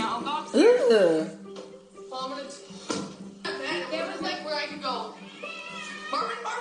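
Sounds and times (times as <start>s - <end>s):
speech: 0.1s - 1.4s
domestic cat meowing: 5.2s - 6.5s.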